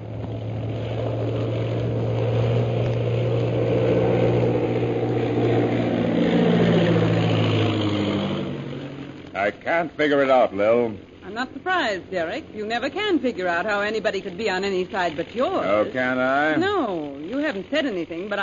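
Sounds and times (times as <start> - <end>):
propeller airplanes of an air squadron droning overhead, coming in to land: 0.0 - 18.4
speech: 9.6 - 18.4.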